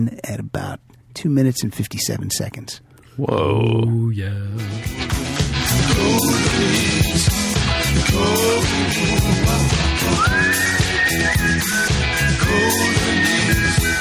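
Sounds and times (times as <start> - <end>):
speech: 0.0 - 13.9
full-band rock song with drums, bass and guitars: 4.7 - 13.9
subtle whistling in a rock song: 10.0 - 13.9.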